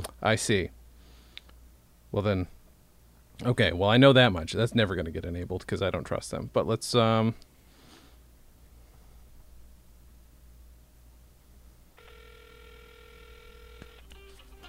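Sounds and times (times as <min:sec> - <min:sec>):
speech: 0:00.2 - 0:00.8, 0:02.1 - 0:02.6, 0:03.4 - 0:07.5
phone ringing with bright stacked electronic ringtone: 0:12.0 - 0:14.6.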